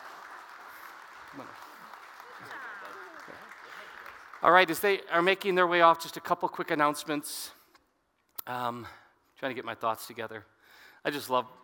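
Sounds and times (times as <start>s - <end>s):
large crowd applauding: 0.0s - 5.3s
speech: 1.3s - 1.7s, 4.4s - 7.6s, 8.5s - 11.6s.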